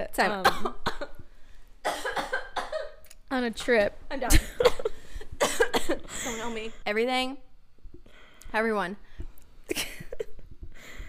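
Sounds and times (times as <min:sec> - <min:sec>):
speech: 0:00.1 - 0:00.8, 0:03.4 - 0:04.8, 0:05.9 - 0:07.5, 0:08.5 - 0:09.1
person coughing harshly: 0:00.4 - 0:01.2, 0:01.8 - 0:03.0, 0:04.3 - 0:06.5.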